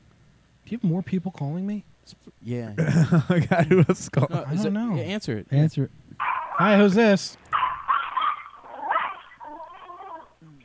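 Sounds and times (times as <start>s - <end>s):
speech: 0.7s - 7.4s
dog whining and yelping through a phone line: 7.5s - 10.6s.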